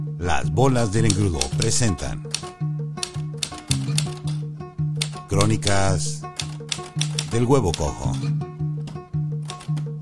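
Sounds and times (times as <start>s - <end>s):
speech: 0.2s - 2.4s, 5.3s - 6.4s, 7.0s - 8.4s
typewriter keystrokes: 1.0s - 4.4s, 5.0s - 8.0s, 9.5s - 10.0s.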